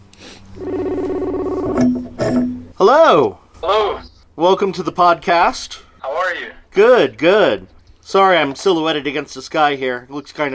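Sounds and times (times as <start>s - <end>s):
phone call dialing and ringing: 0.6s - 2.6s
brief sharper electronic phone tone: 0.6s - 2.7s
speech: 3.1s - 10.5s.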